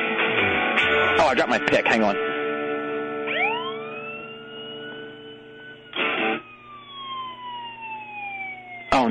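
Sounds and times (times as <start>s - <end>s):
brief burst of noise: 0.2s - 2.7s
emergency vehicle siren wailing: 0.2s - 9.1s
speech: 1.3s - 2.3s.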